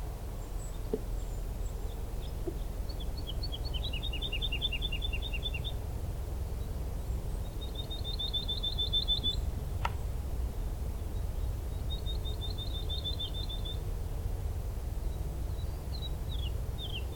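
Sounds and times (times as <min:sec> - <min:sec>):
low steady rumble: 0:00.0 - 0:17.1
woodlark singing rapid trilled runs along a lower path: 0:00.4 - 0:05.8, 0:07.0 - 0:10.0, 0:11.0 - 0:13.9, 0:15.1 - 0:17.1.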